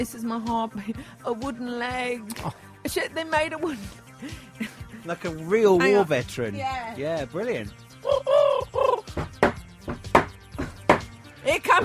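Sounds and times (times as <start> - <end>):
speech: 0.0 - 8.7, 11.5 - 11.8
homing pigeon cooing: 8.0 - 9.2.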